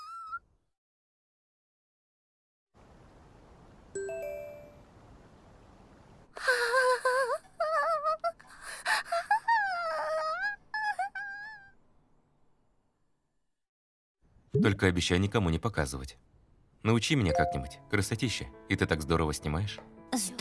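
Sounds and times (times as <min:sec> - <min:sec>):
bell-like chime: 0:04.0 - 0:04.8
person crying and whimpering: 0:06.4 - 0:11.7
speech: 0:14.6 - 0:20.4.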